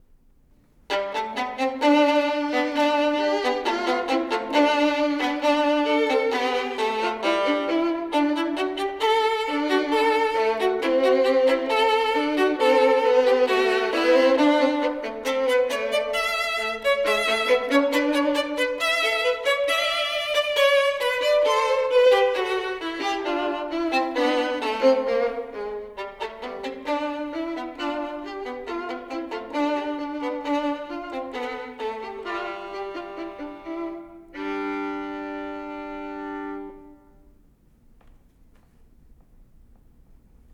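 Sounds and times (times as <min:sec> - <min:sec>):
two violins playing a duo: 0:00.9 - 0:37.5.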